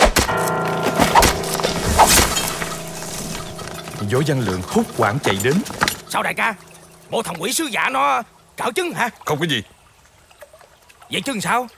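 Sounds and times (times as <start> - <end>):
sword slashing through banana tree trunks: 0.0 - 2.6
steady tonal background: 0.3 - 10.0
speech: 4.0 - 9.7, 11.1 - 11.7.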